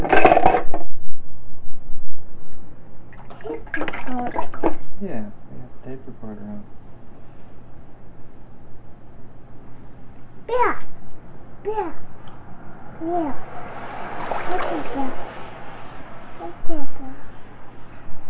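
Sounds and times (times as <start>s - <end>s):
faint hum: 0.0s - 18.2s
water splashing while bathing a child: 3.1s - 4.9s, 13.4s - 16.6s.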